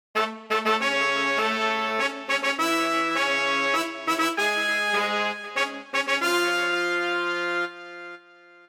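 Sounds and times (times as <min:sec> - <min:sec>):
narrative pop quiz music: 0:00.2 - 0:08.6.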